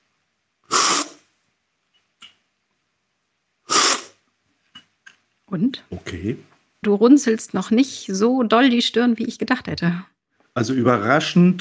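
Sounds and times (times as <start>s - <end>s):
faint mouth clicks: 0.7s - 1.2s, 3.7s - 4.2s
loud hissing slurps of coffee with lemon during a coffee tasting: 0.7s - 1.2s, 3.7s - 4.2s
speech: 5.5s - 11.6s.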